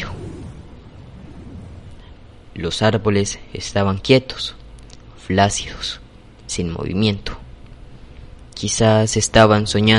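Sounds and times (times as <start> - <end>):
thunderstorm rumble with low booms: 0.0 - 2.9
speech: 2.6 - 4.6, 5.3 - 7.4, 8.6 - 9.9.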